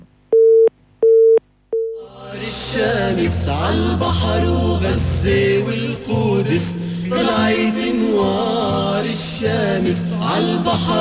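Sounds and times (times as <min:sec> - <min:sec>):
telephone busy signal after a call line dropped: 0:00.3 - 0:02.0
speech: 0:02.4 - 0:08.5, 0:09.1 - 0:10.9.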